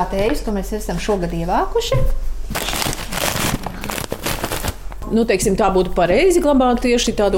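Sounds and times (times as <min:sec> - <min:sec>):
speech: 0:00.0 - 0:02.6, 0:05.1 - 0:07.3
paper bags for storing harvested tea being handled and crinkled: 0:02.5 - 0:05.0.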